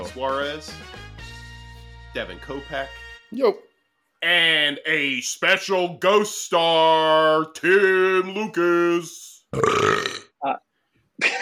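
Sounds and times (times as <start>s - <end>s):
speech: 0.2s - 1.1s, 2.1s - 11.4s
loud drawn-out rough throaty burp: 9.5s - 10.5s.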